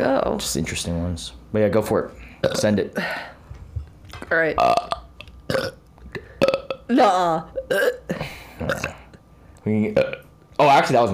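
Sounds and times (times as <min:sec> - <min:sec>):
speech: 0:00.1 - 0:03.4, 0:04.2 - 0:05.0, 0:06.9 - 0:08.0, 0:09.6 - 0:11.1
loud natural rough croaky burp: 0:02.4 - 0:02.8, 0:04.6 - 0:06.9, 0:07.6 - 0:09.1, 0:10.0 - 0:10.3.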